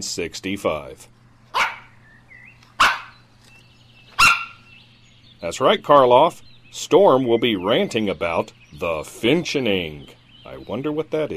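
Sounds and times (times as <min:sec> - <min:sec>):
speech: 0:00.0 - 0:01.2, 0:05.4 - 0:11.3
dogs barking: 0:01.5 - 0:02.0, 0:02.7 - 0:03.3, 0:04.1 - 0:04.8
dog whining: 0:01.6 - 0:01.9, 0:04.2 - 0:04.7.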